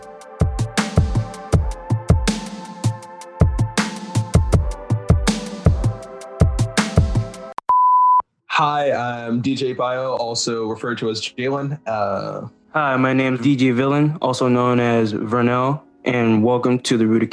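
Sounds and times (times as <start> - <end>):
rhythmic music bed with thumping beats: 0.0 - 7.6
speech: 8.6 - 17.3.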